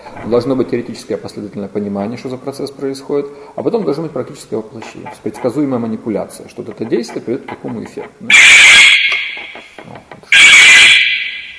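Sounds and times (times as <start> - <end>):
speech: 0.1 - 8.6
triggered alarm with shrill steady electronic tone: 8.3 - 11.5.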